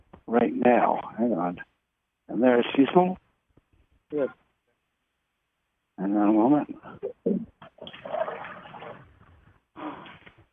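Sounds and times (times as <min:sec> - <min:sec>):
speech: 0:00.3 - 0:01.7, 0:02.3 - 0:03.2, 0:04.1 - 0:04.4, 0:06.0 - 0:08.5
toilet flushing: 0:07.8 - 0:09.1.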